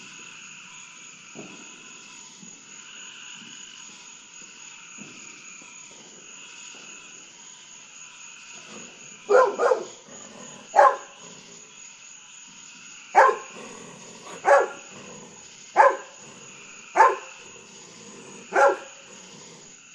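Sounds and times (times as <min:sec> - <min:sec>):
golden retriever barking at fireworks at night: 0:09.3 - 0:11.4, 0:13.2 - 0:19.4.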